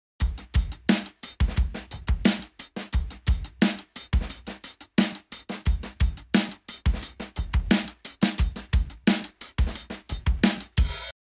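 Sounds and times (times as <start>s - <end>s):
dry drums: 0.2s - 11.2s.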